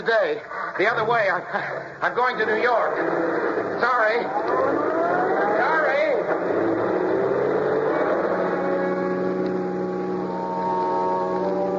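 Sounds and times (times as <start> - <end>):
speech: 0.0 - 6.8
car engine accelerating as car pulls back onto road: 2.9 - 11.7.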